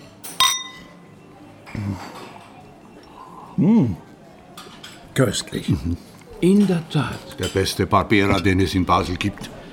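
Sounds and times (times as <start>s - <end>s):
two wine glasses clinking in a toast: 0.2s - 1.0s
speech: 1.7s - 2.2s, 3.6s - 4.1s, 5.2s - 9.6s.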